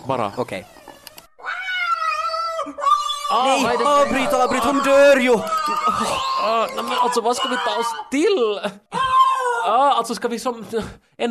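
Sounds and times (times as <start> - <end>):
speech: 0.0 - 0.8, 3.3 - 8.9, 9.6 - 11.2
cat yowling meow: 0.8 - 8.1
laughter: 3.5 - 9.2.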